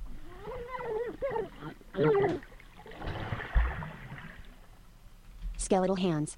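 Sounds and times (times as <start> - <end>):
video game player drowning with gurgling strained groans: 0.2 - 3.1
bubbling churning water in a video game drowning effect: 1.4 - 4.8
speech: 5.7 - 6.3.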